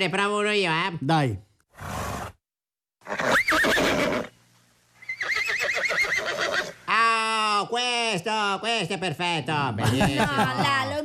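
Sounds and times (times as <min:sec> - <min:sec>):
speech: 0:00.0 - 0:02.0, 0:07.7 - 0:11.0
horse whinnying loudly: 0:03.0 - 0:04.4, 0:05.0 - 0:06.9
laughter: 0:09.8 - 0:11.0.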